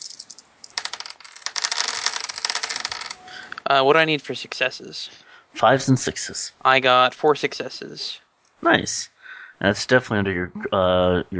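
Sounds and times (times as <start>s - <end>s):
eight dice rattling as rolled for a tabletop role-playing game: 0.0s - 3.6s
speech: 3.7s - 11.3s.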